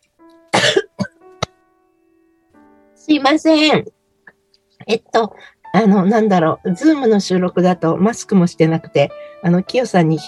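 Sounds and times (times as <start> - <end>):
person coughing on a video call: 0.5 - 1.5
speech: 3.0 - 4.0, 4.8 - 10.2.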